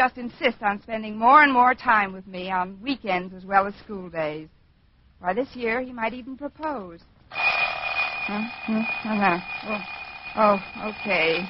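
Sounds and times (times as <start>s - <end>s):
speech: 0.0s - 4.6s, 5.2s - 7.6s, 8.3s - 11.4s
alarm clock ringing: 7.3s - 11.4s.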